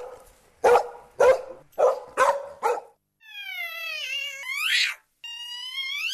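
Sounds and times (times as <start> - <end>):
dog barking: 0.0 - 3.0
long, drawn-out cat-like yowl: 3.2 - 6.1.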